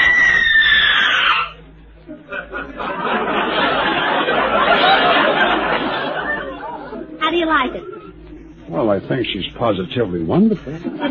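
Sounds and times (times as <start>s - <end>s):
woman letting out a loud shrill scream: 0.0s - 1.6s
crowd laughing: 2.0s - 8.5s, 10.7s - 11.0s
speech: 9.0s - 11.0s.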